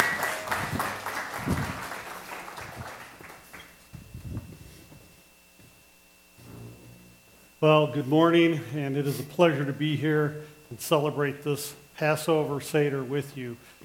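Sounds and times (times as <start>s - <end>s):
church audience applause: 0.0s - 3.8s
speech: 7.6s - 13.8s.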